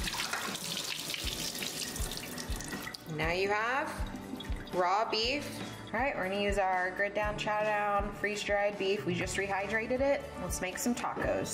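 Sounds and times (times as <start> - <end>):
water pouring through a colander draining rehydrated freeze-dried beef: 0.0 - 3.2, 4.0 - 4.9
speech: 3.2 - 4.1, 4.7 - 11.5.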